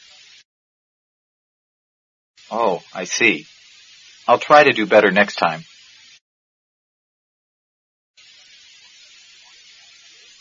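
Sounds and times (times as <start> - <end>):
eggs sizzling in a frying pan: 0.0 - 0.5, 2.4 - 6.2, 8.2 - 10.3
speech: 2.5 - 3.5, 4.3 - 5.7.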